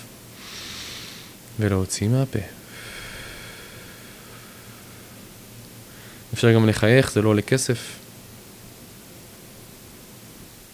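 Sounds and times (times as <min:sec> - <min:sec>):
deep inhale through the nose: 0:00.3 - 0:01.4, 0:02.7 - 0:05.2, 0:05.9 - 0:06.3
speech: 0:01.6 - 0:02.6, 0:06.4 - 0:08.0.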